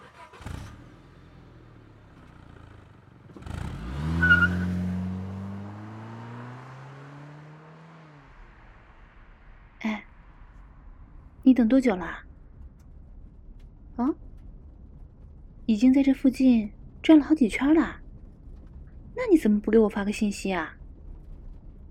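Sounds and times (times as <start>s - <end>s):
car driving past: 0.3s - 11.4s
speech: 11.5s - 12.3s, 15.7s - 18.0s, 19.2s - 20.8s.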